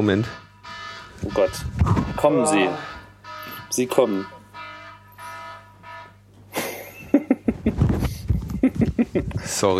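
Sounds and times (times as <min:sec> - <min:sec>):
speech: 0:00.0 - 0:00.4, 0:01.2 - 0:02.9, 0:03.7 - 0:04.4, 0:09.1 - 0:09.7
electronic alarm clock beeping: 0:00.0 - 0:06.2
laughter: 0:06.5 - 0:09.6.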